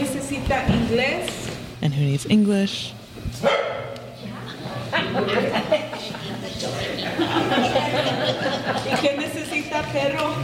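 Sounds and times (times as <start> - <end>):
murmur of a crowd talking at a community meeting in a church: 0.0 - 10.4
speech: 2.0 - 3.8, 5.0 - 10.4
stray dog barking inside a church: 3.4 - 4.1
laughter: 4.7 - 9.5.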